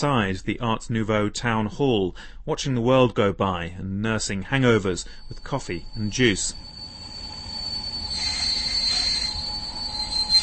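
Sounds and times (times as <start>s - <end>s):
speech: 0.0s - 6.7s
train wheels squealing on rails: 4.7s - 10.4s.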